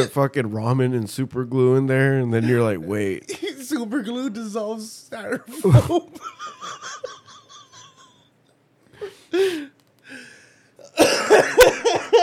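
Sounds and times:
speech: 0.0s - 7.2s, 9.0s - 9.7s
wheezy gasps: 8.9s - 10.8s
harsh loud coughs: 10.8s - 12.2s.

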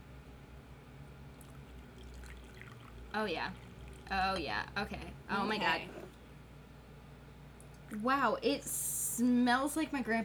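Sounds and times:
tea pouring: 1.4s - 4.3s
speech: 3.1s - 6.0s, 7.9s - 10.2s.

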